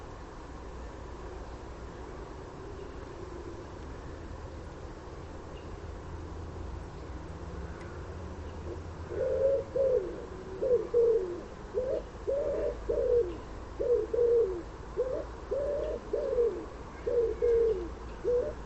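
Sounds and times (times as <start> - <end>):
common wood pigeon cooing with low husky coos: 8.7 - 18.6.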